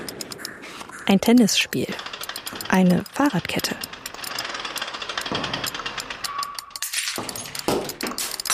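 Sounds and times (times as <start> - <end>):
speech: 1.1 - 2.1, 2.7 - 3.8
glass shattering and crunching: 6.8 - 8.5.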